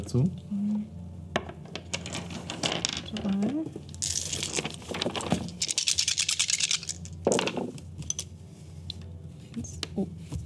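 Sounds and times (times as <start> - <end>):
speech: 0.0 - 0.5, 3.1 - 3.9
dice clattering across a hard tabletop during a role-playing game: 1.4 - 8.3.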